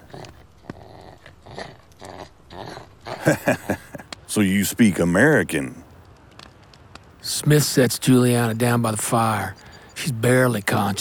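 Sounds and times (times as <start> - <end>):
dog growling low: 0.0 - 3.3
laughter: 3.2 - 4.1
speech: 3.2 - 5.8, 7.4 - 10.9.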